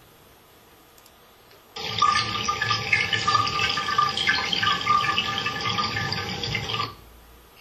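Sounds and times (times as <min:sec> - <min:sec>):
running water: 0:01.8 - 0:07.0.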